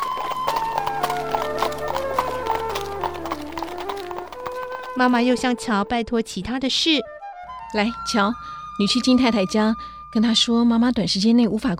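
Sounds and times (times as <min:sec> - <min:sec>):
horse hooves clip-clopping pulling a carriage: 0:00.0 - 0:05.4
speech: 0:05.0 - 0:11.7.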